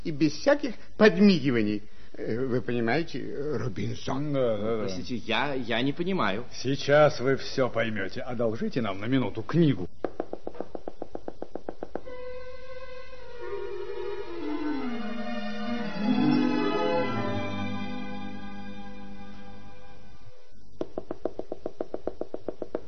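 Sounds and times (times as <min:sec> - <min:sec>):
speech: 0:00.0 - 0:09.9
rapid even knocking: 0:10.0 - 0:12.1, 0:20.8 - 0:22.8
long eerie gliding tone sweeping up and down: 0:12.1 - 0:20.4.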